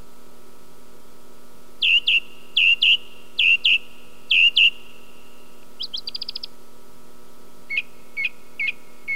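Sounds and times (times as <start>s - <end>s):
faint constant hum: 0.0s - 9.1s
song thrush song: 1.8s - 6.6s, 7.7s - 9.1s.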